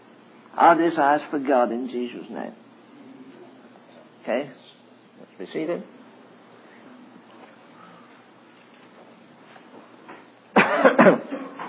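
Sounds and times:
speech: 0:00.6 - 0:02.6, 0:04.2 - 0:04.7, 0:05.3 - 0:06.0, 0:11.0 - 0:11.4
people in an audience coughing: 0:10.5 - 0:11.6.

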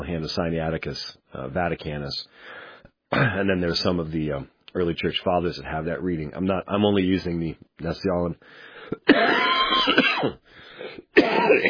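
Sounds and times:
speech: 0:00.1 - 0:11.6
person coughing: 0:03.1 - 0:03.4, 0:09.0 - 0:11.6.

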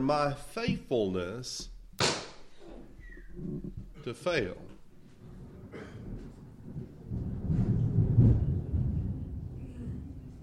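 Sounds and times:
speech: 0:00.0 - 0:01.7, 0:03.4 - 0:04.7
thunder rumbling during a storm: 0:05.0 - 0:10.4.

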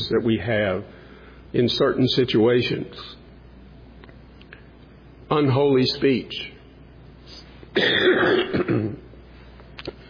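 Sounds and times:
speech: 0:00.1 - 0:03.2, 0:05.3 - 0:06.5, 0:07.8 - 0:09.0
harsh raspy cough: 0:07.7 - 0:09.1.

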